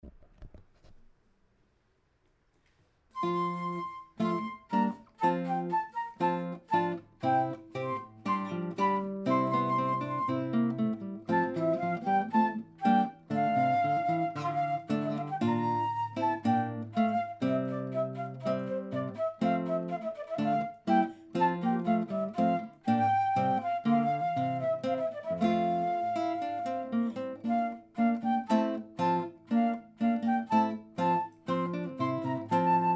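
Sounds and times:
guitar in a Renaissance song: 3.1 - 32.9
flute in a Renaissance song: 3.2 - 32.9.

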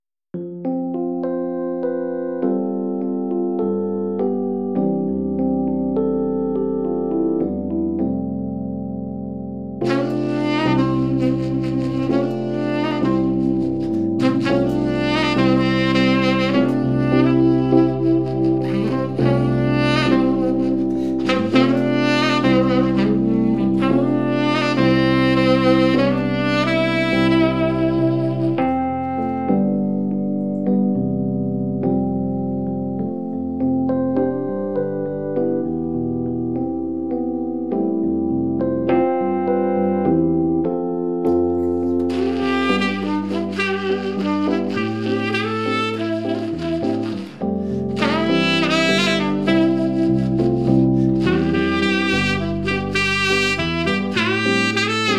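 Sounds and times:
piano in a sax and piano duo: 0.3 - 55.1
saxophone in a sax and piano duo: 9.8 - 30.5, 41.5 - 55.1.

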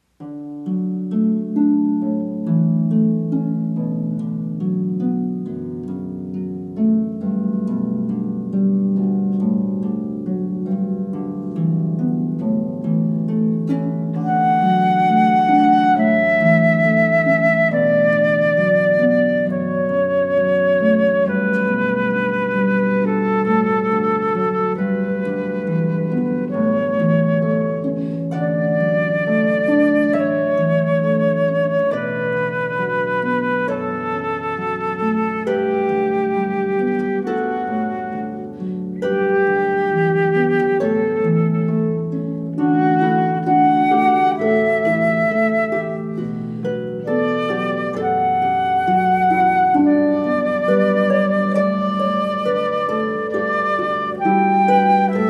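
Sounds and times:
harp playing: 0.0 - 55.2
flute playing: 6.8 - 55.2.

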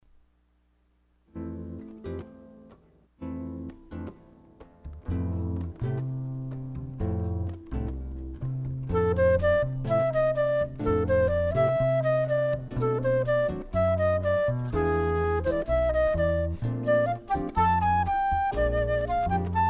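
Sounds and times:
jazz harp trio playing: 4.9 - 19.6.

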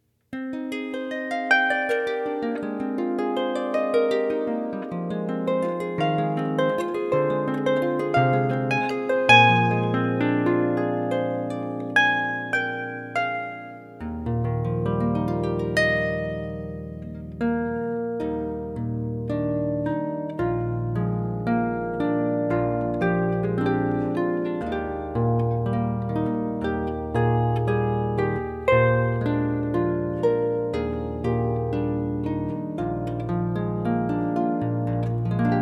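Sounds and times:
soft classical harp music: 0.3 - 35.6.

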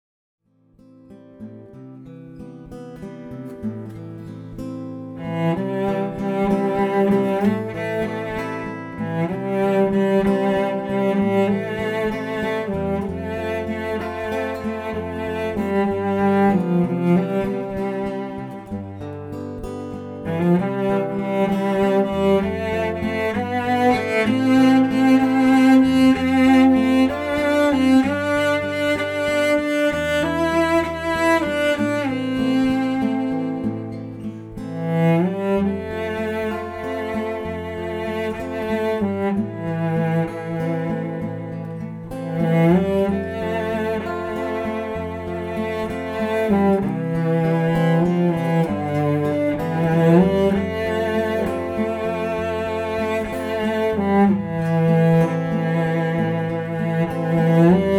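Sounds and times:
guitar: 0.4 - 57.9
cello: 0.8 - 57.9.

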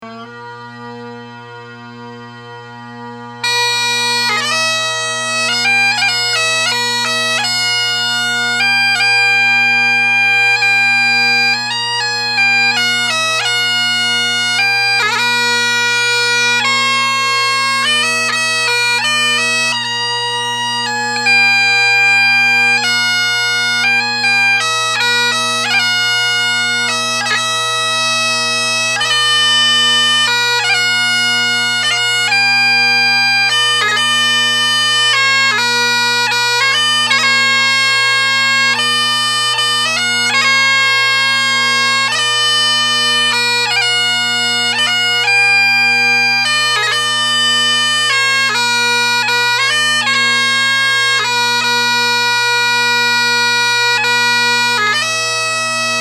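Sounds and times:
bagpipes playing: 0.0 - 55.9.

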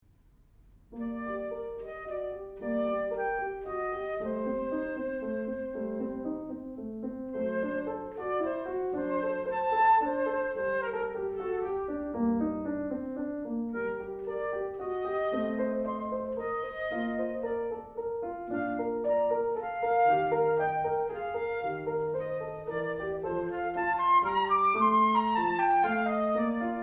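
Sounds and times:
piano playing chamber music: 0.9 - 26.8
flute playing chamber music: 1.0 - 6.3, 7.4 - 12.2, 13.8 - 26.8.

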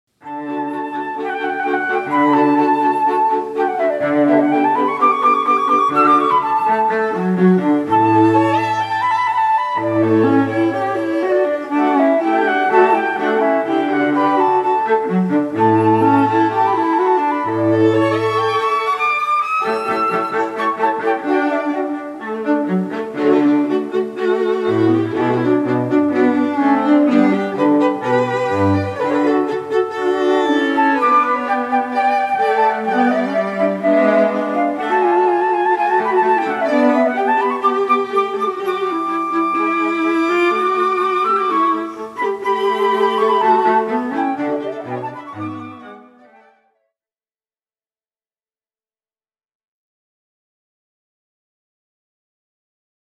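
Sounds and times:
string quartet: 0.2 - 46.6
flute: 0.2 - 47.0.

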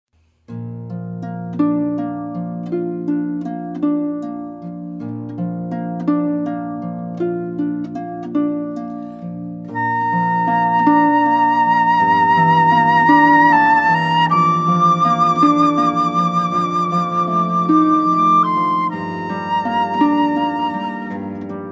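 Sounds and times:
harp: 0.5 - 21.6
flute: 9.7 - 21.6.

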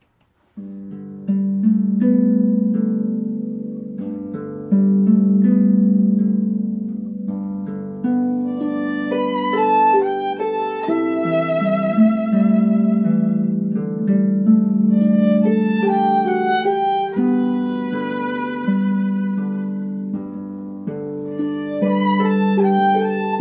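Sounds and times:
harp: 0.0 - 23.4
violin: 8.4 - 13.7, 14.8 - 23.4.

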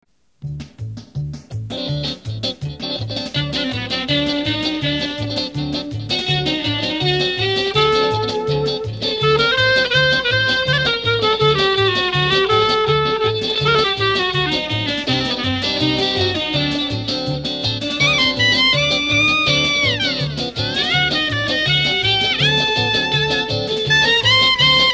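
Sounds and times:
klezmer freylekhs dance music: 0.3 - 24.9.

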